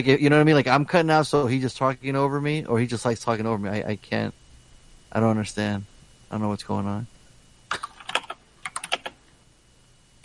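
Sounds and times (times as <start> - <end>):
speech: 0.0 - 4.4, 5.1 - 7.9
typing on a computer keyboard: 7.7 - 9.2.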